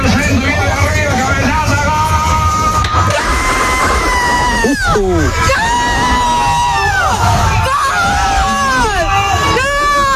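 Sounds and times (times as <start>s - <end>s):
low bus engine rumble: 0.0s - 7.8s
bus passengers cheering and yelling over a goal: 0.0s - 10.1s.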